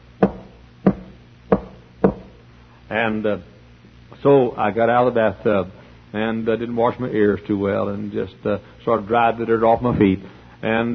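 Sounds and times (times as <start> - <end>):
firm knocks on a door with a slight hollow ring: 0.2 - 2.4
speech: 2.9 - 3.5, 4.2 - 10.9.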